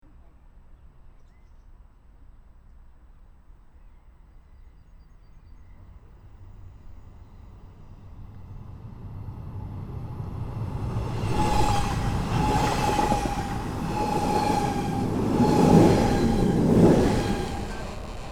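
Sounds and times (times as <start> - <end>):
distant TILO train passing in Tenero: 5.7 - 18.2.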